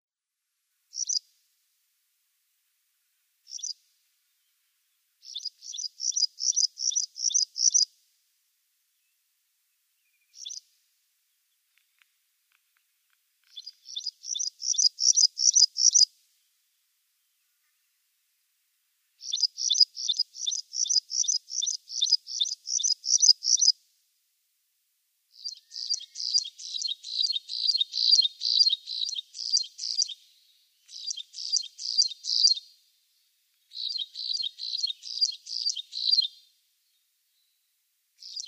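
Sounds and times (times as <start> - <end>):
Graceful Prinia singing: 0.9 - 1.2, 3.1 - 7.9, 8.9 - 18.0, 19.1 - 23.8, 25.3 - 32.8, 33.5 - 38.4.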